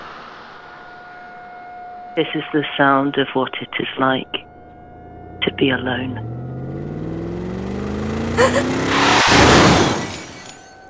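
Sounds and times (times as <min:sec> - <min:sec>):
speech: 0:02.2 - 0:04.5, 0:05.6 - 0:06.3, 0:08.4 - 0:09.8
car engine humming: 0:04.4 - 0:10.7
car tires rolling on pavement, gravel and dirt: 0:04.5 - 0:10.7
gravel crunching under tires: 0:04.6 - 0:10.8.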